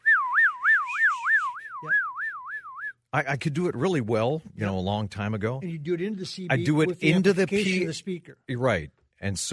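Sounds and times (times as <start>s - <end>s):
person whistling a siren imitation: 0.0s - 3.0s
speech: 3.1s - 9.5s.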